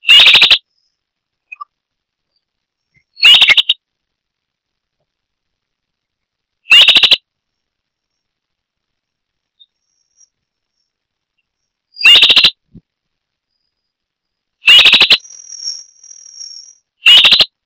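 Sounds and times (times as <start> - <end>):
Myiophobus fasciatus calling: 0.0 - 0.6, 2.9 - 3.8, 6.7 - 7.2, 11.4 - 12.6, 14.6 - 17.5.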